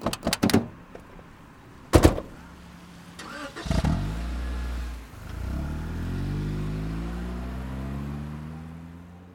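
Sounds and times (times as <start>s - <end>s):
car door thumps: 1.9s - 2.4s
car engine starting and accelerating away: 3.2s - 9.3s.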